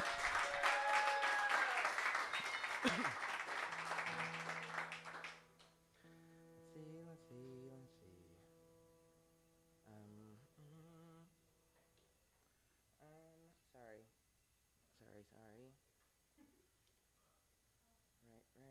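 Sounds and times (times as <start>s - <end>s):
audience applause at a live-streamed event: 0.0s - 5.6s.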